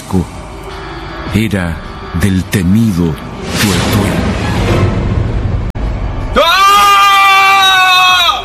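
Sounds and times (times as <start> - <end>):
rumbling noisy background: 0.0 - 8.4
speech: 0.1 - 0.4, 1.3 - 5.0
loud sustained scream of horror at night: 6.3 - 8.4.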